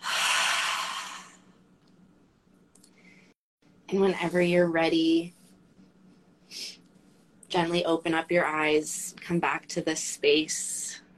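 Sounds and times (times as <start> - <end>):
deep belly breath in and out during a guided relaxation exercise: 0.0 - 1.6
speech: 3.9 - 5.4, 7.5 - 11.0.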